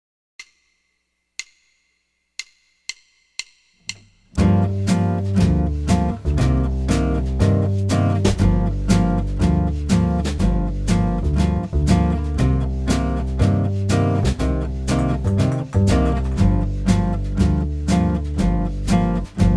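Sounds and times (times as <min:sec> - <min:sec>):
minor blues in G minor: 0:04.4 - 0:19.5.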